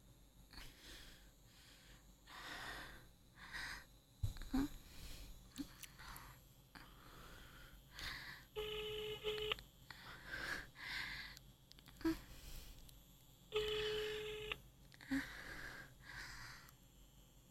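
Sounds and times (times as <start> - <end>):
heavy breathing: 0.5 - 3.9, 4.5 - 8.5, 9.9 - 12.9, 15.0 - 16.7
phone ringback tone: 8.6 - 9.6, 13.5 - 14.6.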